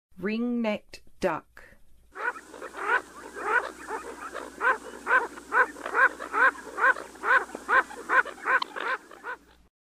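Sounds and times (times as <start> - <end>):
Ring-necked Duck in Western USA: 2.2 - 9.5.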